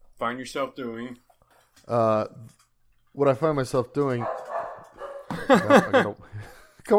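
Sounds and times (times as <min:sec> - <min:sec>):
speech: 0:00.2 - 0:01.2, 0:01.8 - 0:02.6, 0:03.2 - 0:04.5, 0:05.5 - 0:06.9
dog barking: 0:04.2 - 0:05.4
laughter: 0:05.3 - 0:06.6.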